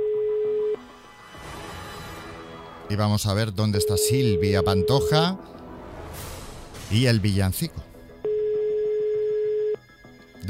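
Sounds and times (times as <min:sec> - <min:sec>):
telephone ringback tone on an outgoing call: 0:00.0 - 0:00.8, 0:03.8 - 0:05.2, 0:08.2 - 0:09.9
speech: 0:02.9 - 0:05.6, 0:06.9 - 0:07.9.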